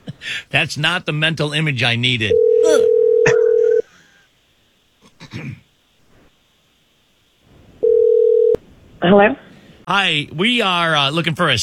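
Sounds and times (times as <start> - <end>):
speech: 0.2 - 2.9, 9.0 - 11.6
electronic ringback tone of an outgoing call on a radio show: 2.3 - 3.8, 7.8 - 8.6
rustle or throat-clearing: 5.0 - 5.7.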